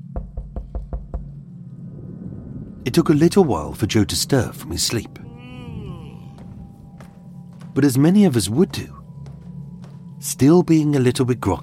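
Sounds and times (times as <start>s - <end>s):
firm knocking on a door: 0.0s - 1.4s
speech: 2.8s - 5.3s, 7.8s - 9.0s, 10.2s - 11.6s.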